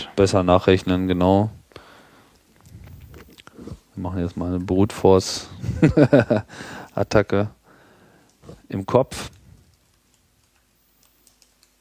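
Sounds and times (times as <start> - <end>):
speech: 0.2 - 1.6, 4.0 - 7.6, 8.7 - 9.4
laughter: 5.6 - 6.6
computer keyboard typing: 9.6 - 11.7.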